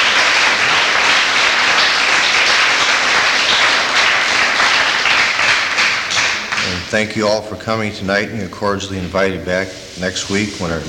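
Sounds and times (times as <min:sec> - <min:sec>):
crowd at a meeting applauding a speaker: 0:00.0 - 0:06.9
speech: 0:06.9 - 0:10.8.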